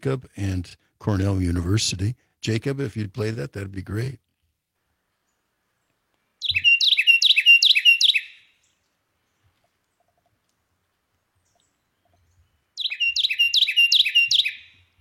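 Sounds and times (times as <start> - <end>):
speech: 0.0 - 4.3
Carolina wren song: 5.2 - 14.9.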